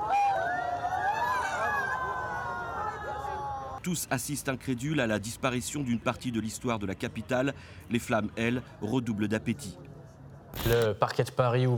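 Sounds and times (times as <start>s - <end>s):
large crowd screaming in horror: 0.0s - 3.8s
dense murmur of crowd chatter: 1.4s - 10.9s
speech: 3.8s - 9.9s, 10.5s - 11.7s.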